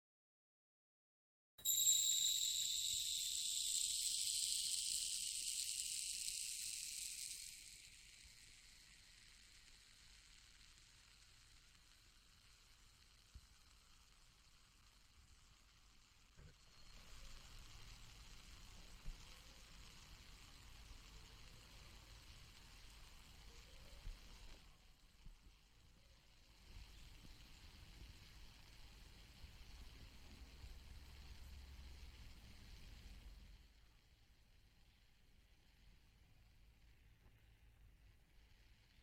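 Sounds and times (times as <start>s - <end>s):
hourglass sand trickling: 1.6s - 24.7s, 26.1s - 33.7s.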